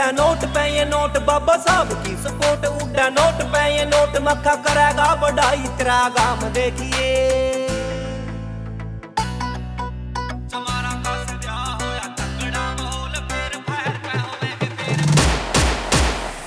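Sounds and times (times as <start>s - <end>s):
loud rhythmic music track with heavy repeated bass stabs: 0.0s - 16.4s
speech: 0.1s - 7.5s
celebratory gunfire at a festive gathering: 15.2s - 16.4s.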